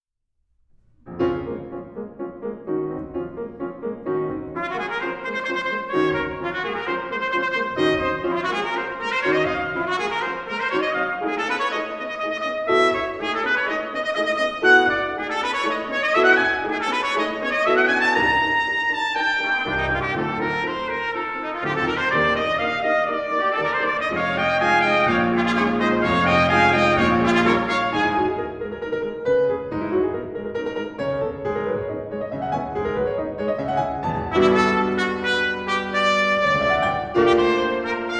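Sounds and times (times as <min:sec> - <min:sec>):
two trumpets and piano playing: 0:01.1 - 0:38.1.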